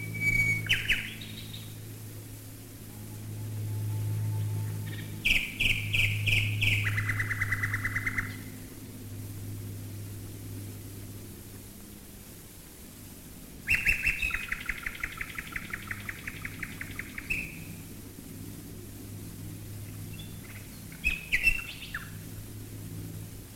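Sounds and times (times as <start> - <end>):
common nightingale singing: 0.0 - 1.8, 2.9 - 8.5, 13.6 - 17.8, 20.1 - 22.2
bomber aircraft deep engine drone: 0.0 - 13.6, 14.9 - 23.5.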